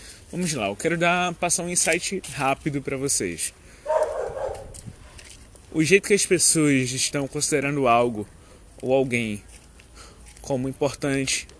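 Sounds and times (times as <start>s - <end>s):
faint street ambience: 0.0s - 11.5s
speech: 0.3s - 3.6s, 5.7s - 9.5s, 10.5s - 11.5s
dog barking on the street: 3.9s - 4.7s.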